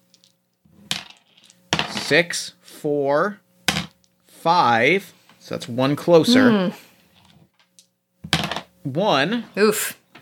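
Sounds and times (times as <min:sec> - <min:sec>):
dice tumbling and knocking together on a surface: 0:00.1 - 0:02.1, 0:08.3 - 0:08.7
speech: 0:02.1 - 0:03.4, 0:04.4 - 0:06.8, 0:08.9 - 0:10.2.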